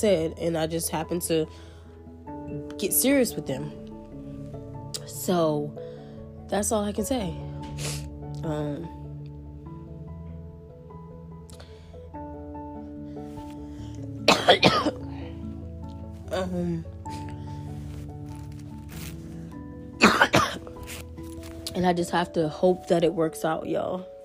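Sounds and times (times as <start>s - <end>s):
speech: 0.0s - 1.7s, 2.5s - 3.8s, 5.0s - 5.9s, 6.5s - 9.0s, 14.5s - 15.0s, 16.4s - 17.2s, 21.8s - 24.1s
person coughing harshly: 14.3s - 15.1s, 20.0s - 20.7s.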